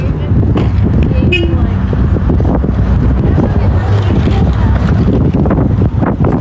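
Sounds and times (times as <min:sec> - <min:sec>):
constant low rumble of street traffic: 0:00.0 - 0:06.3
heavy wind buffeting the microphone: 0:00.0 - 0:06.3
short car horn toot: 0:01.2 - 0:01.6.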